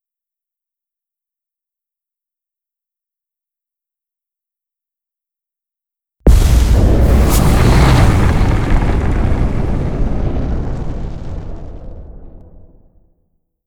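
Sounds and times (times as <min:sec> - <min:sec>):
shattered planet explosion: 0:06.3 - 0:13.1.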